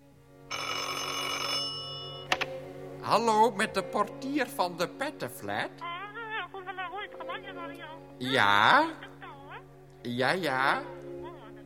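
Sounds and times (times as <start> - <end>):
porter's telephone bell in an apartment building ringing: 0.5 - 2.3
speech: 3.1 - 5.9, 8.2 - 9.0, 10.0 - 11.0.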